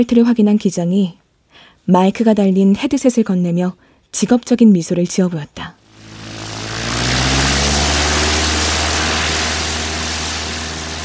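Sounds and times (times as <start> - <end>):
speech: 0.0 - 5.8
small propeller plane engine roaring during takeoff: 5.8 - 11.0.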